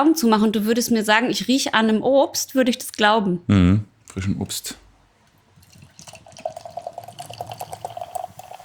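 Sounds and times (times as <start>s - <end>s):
speech: 0.0s - 4.8s
beer fizzing and crackling in a glass: 5.4s - 8.6s
golden slightly cloudy beer pouring into a glass: 5.5s - 8.6s.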